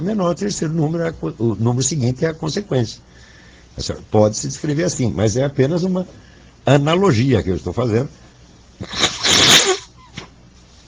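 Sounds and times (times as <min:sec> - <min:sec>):
speech: 0:00.0 - 0:03.1, 0:03.8 - 0:08.2, 0:08.8 - 0:09.2
person with the flu sneezing forcefully: 0:08.8 - 0:10.3
faint sniff: 0:08.8 - 0:10.8.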